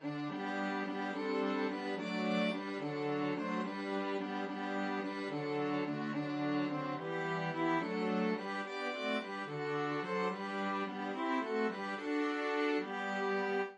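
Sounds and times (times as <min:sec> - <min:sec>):
string quartet playing: 0:00.0 - 0:13.7.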